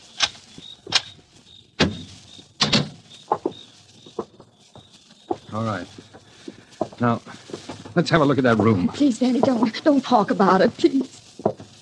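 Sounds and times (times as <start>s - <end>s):
door lock and latch clicking: 0.2s - 1.1s
door handle rattling: 2.6s - 2.9s
speech: 5.5s - 6.1s, 7.0s - 7.4s, 8.0s - 11.1s.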